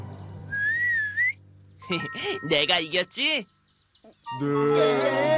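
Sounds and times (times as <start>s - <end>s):
person attempting to whistle through pursed lips: 0.5s - 1.4s
speech: 1.9s - 3.5s, 4.3s - 5.3s.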